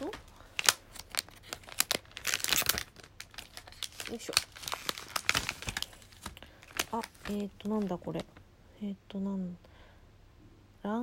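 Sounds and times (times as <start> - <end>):
wrapping crinkling and tearing as a package is opened: 0.0 - 8.4
speech: 4.1 - 4.5, 6.9 - 9.7, 10.8 - 11.0.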